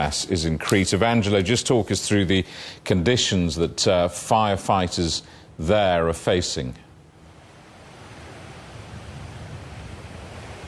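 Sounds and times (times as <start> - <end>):
speech: 0.0 - 6.8
crashing sea waves: 7.2 - 10.6
strong wind: 7.2 - 10.6.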